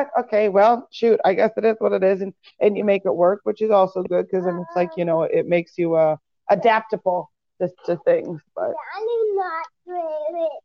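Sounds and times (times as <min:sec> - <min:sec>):
speech: 0:00.0 - 0:10.6
young girl chattering while playing with Legos: 0:08.8 - 0:10.6.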